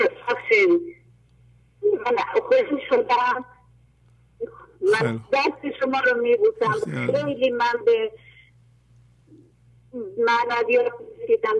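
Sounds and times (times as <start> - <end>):
low steady hum: 0.0 - 11.5
speech: 2.4 - 3.6, 4.4 - 8.3, 10.0 - 11.5
thin-sounding voice of a caller over a phone line: 4.9 - 5.2, 6.6 - 7.4.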